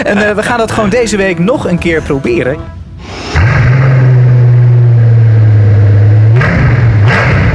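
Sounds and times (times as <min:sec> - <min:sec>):
speech: 0:00.0 - 0:03.7
car engine cranking and catching: 0:03.0 - 0:07.5.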